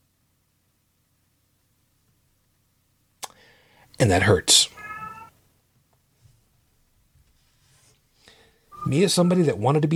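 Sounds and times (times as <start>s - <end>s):
faint hum: 0.0s - 9.9s
speech: 4.0s - 4.8s, 8.9s - 9.9s
cat meowing: 4.7s - 5.3s.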